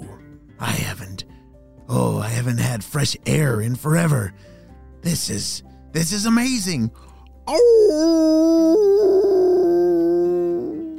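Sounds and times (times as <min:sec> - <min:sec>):
speech: 0:01.9 - 0:08.8
dog howling: 0:07.5 - 0:10.9.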